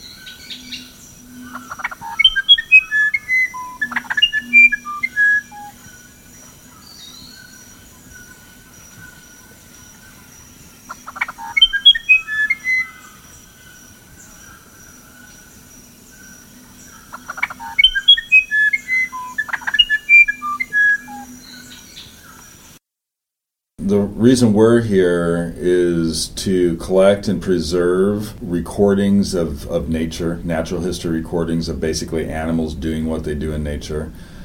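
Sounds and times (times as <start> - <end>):
faint steady insect-like hum: 0.0 - 22.8, 23.9 - 34.4
musician wren singing fluting whistled phrases: 0.0 - 22.8
speech: 24.2 - 34.2.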